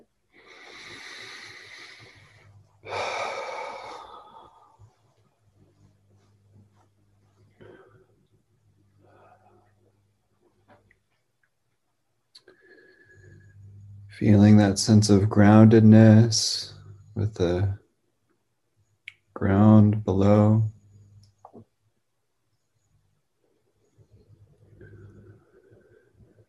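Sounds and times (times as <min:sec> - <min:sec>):
deep belly breathing: 0:00.3 - 0:05.3, 0:07.4 - 0:08.2, 0:12.4 - 0:14.4, 0:24.0 - 0:26.4
speech: 0:14.2 - 0:17.8, 0:19.4 - 0:20.7.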